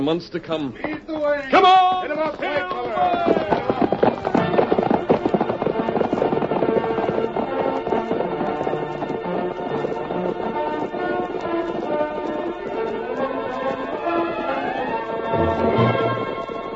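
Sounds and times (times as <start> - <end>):
speech: 0.0 - 3.7
cavalry horse hoofs galloping across an open plain: 0.0 - 16.7.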